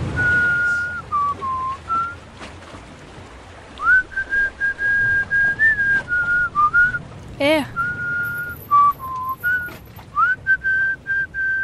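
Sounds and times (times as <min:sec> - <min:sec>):
person whistling a slow steady melody: 0:00.2 - 0:02.2, 0:03.8 - 0:07.0, 0:07.7 - 0:11.6.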